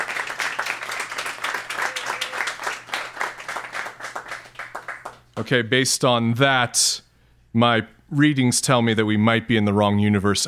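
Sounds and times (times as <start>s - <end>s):
live audience clapping: 0.0s - 5.6s
speech: 5.4s - 7.0s, 7.6s - 10.4s.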